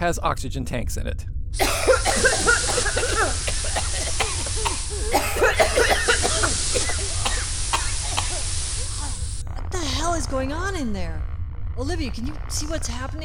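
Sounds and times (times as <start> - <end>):
speech: 0.0 - 2.3, 10.2 - 13.2
constant hiss of air: 1.6 - 9.4
crew members coughing and choking on scents in the ventilation: 1.6 - 9.4.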